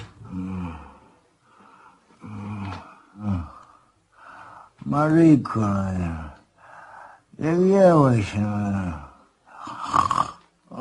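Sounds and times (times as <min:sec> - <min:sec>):
person snoring: 0:00.2 - 0:01.1, 0:02.2 - 0:03.6, 0:09.6 - 0:10.7
speech: 0:04.9 - 0:06.3, 0:07.4 - 0:09.1.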